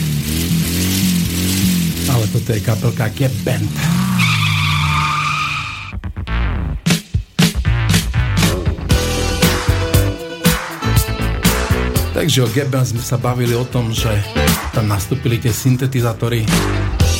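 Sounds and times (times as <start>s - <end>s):
old Škoda car engine cranking and starting: 0.0s - 6.4s, 7.8s - 17.1s
speech: 2.5s - 4.0s, 12.2s - 17.0s
rhythmic music-like pattern of beats: 5.9s - 17.1s.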